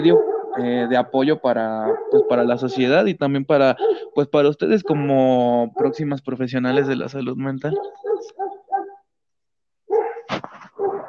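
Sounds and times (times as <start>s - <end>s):
small dog barking and yelping: 0.0s - 1.1s, 1.8s - 3.0s, 3.8s - 4.1s, 5.7s - 6.0s, 7.7s - 9.0s, 9.9s - 11.0s
speech: 0.0s - 8.5s.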